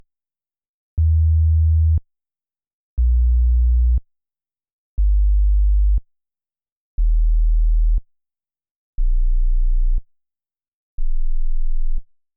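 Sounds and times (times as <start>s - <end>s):
bass sine waves: 1.0s - 2.0s, 3.0s - 4.0s, 5.0s - 6.0s, 7.0s - 8.0s, 9.0s - 10.0s, 11.0s - 12.0s.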